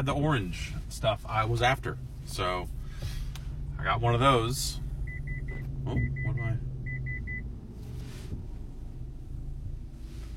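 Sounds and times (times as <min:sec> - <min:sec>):
speech: 0:00.0 - 0:02.8, 0:03.8 - 0:04.8, 0:05.8 - 0:06.7
steady low rumble: 0:00.7 - 0:10.3
high electronic beeps: 0:05.1 - 0:07.4.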